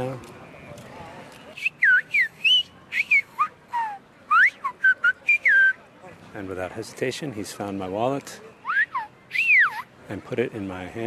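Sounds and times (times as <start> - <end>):
faint noise: 0.0 - 11.0
father whistling short varied notes as clues to his son: 1.6 - 5.8
speech: 6.4 - 8.5, 10.1 - 11.0.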